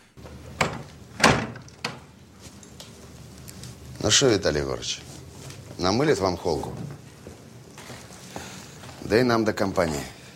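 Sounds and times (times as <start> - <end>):
door pushed firmly shut: 0.6 - 2.0
speech: 4.0 - 5.1, 5.8 - 7.0, 9.1 - 10.2.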